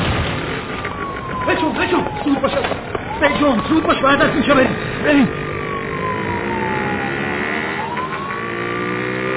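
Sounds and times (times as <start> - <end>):
heavy rumbling traffic and engine noise: 0.0 - 9.3
police siren wailing: 0.4 - 9.3
speech: 1.6 - 5.4.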